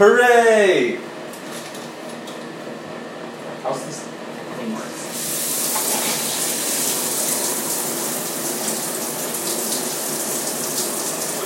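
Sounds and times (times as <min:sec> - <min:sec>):
speech: 0:00.0 - 0:01.1
shower water running: 0:05.0 - 0:11.4.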